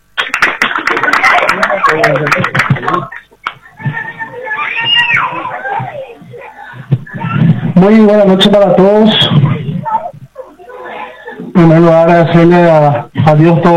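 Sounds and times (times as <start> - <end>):
crowd clapping: 0.2 - 3.7
crowd cheering and whooping: 0.2 - 6.2
laughter: 0.4 - 3.5, 9.5 - 11.6
speech: 1.9 - 3.2, 7.8 - 9.4, 11.6 - 13.7.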